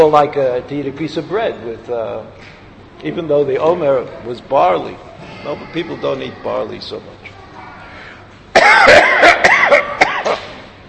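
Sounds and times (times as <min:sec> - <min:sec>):
speech: 0:00.0 - 0:07.2
throaty strained breaths: 0:07.7 - 0:08.5
man coughing: 0:08.5 - 0:10.6.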